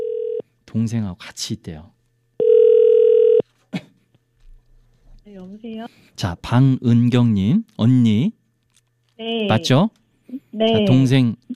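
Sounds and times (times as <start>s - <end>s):
telephone dial tone while placing a call: 0.0s - 0.4s, 2.4s - 3.4s
speech: 0.7s - 2.0s, 5.3s - 8.4s, 9.2s - 11.5s.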